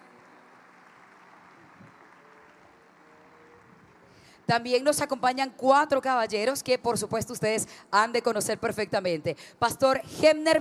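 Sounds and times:
audience applauding in a large room: 0.0 - 4.1
speech: 4.5 - 10.6.

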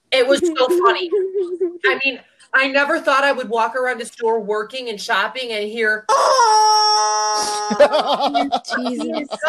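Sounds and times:
laughter: 0.2 - 2.0, 7.4 - 9.4
speech: 0.2 - 9.4
squeezed rubber toy chicken wailing in a store: 6.1 - 7.9.

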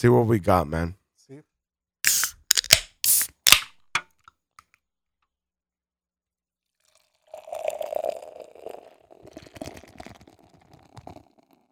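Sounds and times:
speech: 0.0 - 1.5
Mexican chocolate peanut butter milk stout poured into a glass: 6.8 - 11.5.

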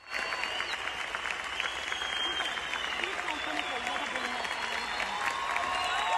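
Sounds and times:
crowd cheering: 0.0 - 6.1
large concert audience applauding: 0.0 - 6.1
faint crowd voices: 2.0 - 6.1.

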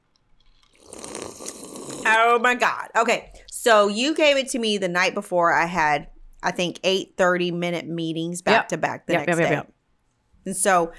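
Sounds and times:
person slurping a drink: 0.4 - 2.2
speech: 2.1 - 9.7, 10.4 - 10.9.

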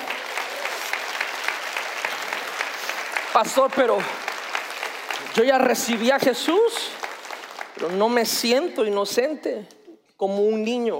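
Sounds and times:
audience applauding: 0.0 - 8.7
speech: 3.4 - 4.3, 5.3 - 7.0, 7.8 - 10.9.

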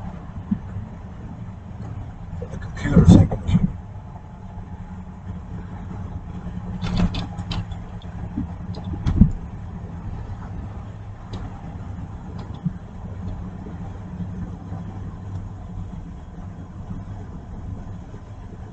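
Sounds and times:
car engine idling to keep the battery charged: 0.0 - 18.7
voices: 2.4 - 3.8.

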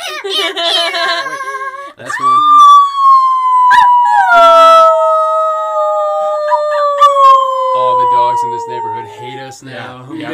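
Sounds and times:
speech: 0.2 - 2.7, 9.5 - 10.3
several human voices imitating wolf howls: 2.1 - 9.7.

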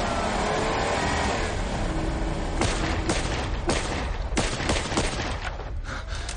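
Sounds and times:
jeep engines roaring as they speed away: 0.0 - 4.6
gunshots aimed at jeeps: 2.6 - 5.8.

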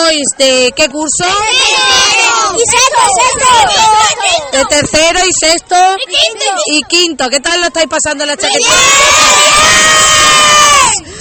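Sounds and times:
speech: 0.1 - 11.1
crowd of schoolchildren shouting and screaming at the chaquetia festival: 1.2 - 4.9, 8.4 - 11.1.

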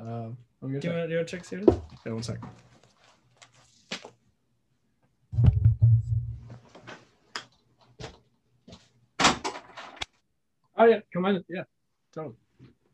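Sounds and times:
speech: 0.3 - 2.7, 10.8 - 12.4
dull heavy knocks on a door: 5.4 - 6.4.

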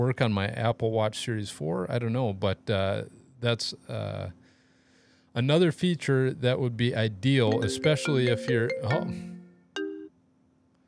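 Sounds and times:
speech: 0.0 - 4.4, 5.4 - 9.3
bright electronic phone chime: 7.5 - 10.1.

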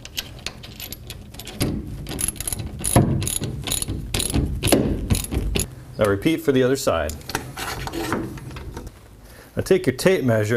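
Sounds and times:
ratchet wrench tightening a bolt on a roll-up cover: 2.1 - 5.7
speech: 6.0 - 7.3, 9.6 - 10.5.

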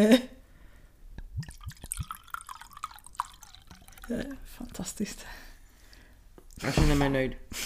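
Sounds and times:
speech: 0.0 - 0.4, 4.1 - 5.4, 6.6 - 7.6
wine poured from a bottle: 1.2 - 5.2.

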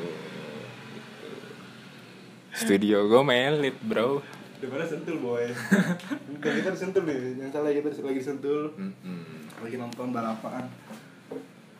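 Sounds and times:
motorcycle engine droning: 0.0 - 6.0
speech: 2.6 - 11.5
laughter: 5.5 - 6.8.

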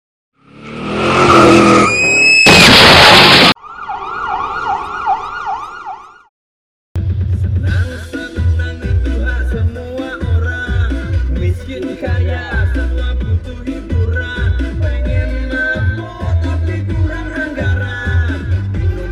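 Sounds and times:
car roaring past in front: 0.4 - 2.0
car tire screech: 0.4 - 3.6
wailing siren: 1.1 - 6.3
loud rhythmic music-like sound: 7.0 - 19.0.

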